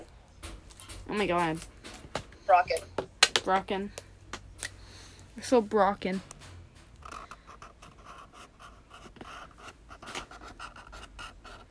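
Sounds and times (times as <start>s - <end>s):
speech: 1.1s - 1.8s, 2.5s - 4.0s, 5.4s - 6.3s
pen scratching across stickers: 7.0s - 11.6s.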